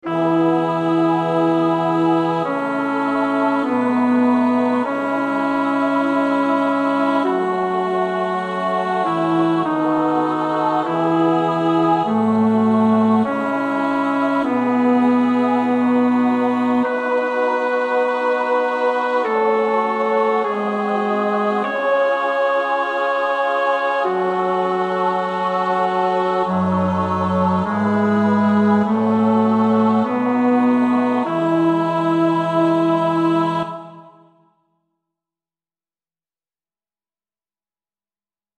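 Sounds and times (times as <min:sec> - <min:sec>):
bass voice singing a psalm: 0:00.0 - 0:34.2.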